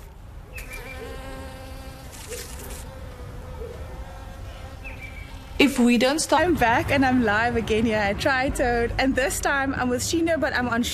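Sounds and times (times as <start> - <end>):
honeybees buzzing around a backyard hive: 0.6 - 8.7
speech: 5.6 - 10.9.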